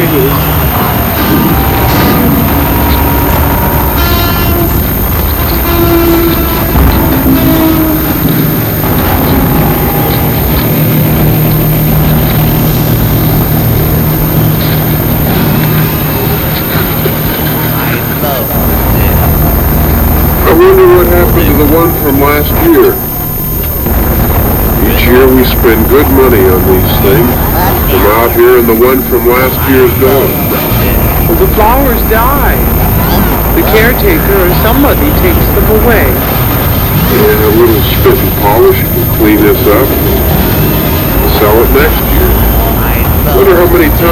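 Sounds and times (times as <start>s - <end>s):
airplane roaring overhead: 0.0s - 44.1s
speech: 26.0s - 30.7s, 31.3s - 32.8s, 33.6s - 36.3s, 37.1s - 40.7s, 41.4s - 42.4s, 43.2s - 44.1s.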